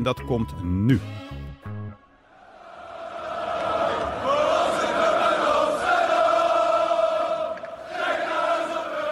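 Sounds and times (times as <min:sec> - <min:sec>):
speech: 0:00.0 - 0:01.4
football supporters roaring in a stadium: 0:02.2 - 0:09.1.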